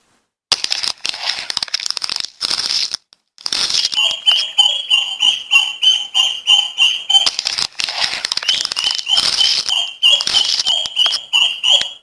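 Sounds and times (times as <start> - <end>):
newly hatched yellow chicks peeping: 3.9 - 7.4, 8.4 - 12.0.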